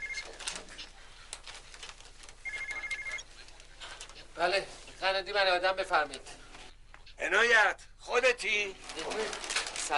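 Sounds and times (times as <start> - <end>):
telephone ringing: 0.0 - 0.4, 2.4 - 3.3
speech: 4.4 - 6.3, 7.2 - 9.9.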